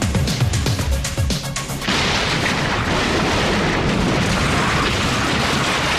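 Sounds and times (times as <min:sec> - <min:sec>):
steady roar of rumbling debris and rushing noise: 0:00.1 - 0:05.9
grenade exploding in a truck and destroying a building: 0:01.8 - 0:05.9.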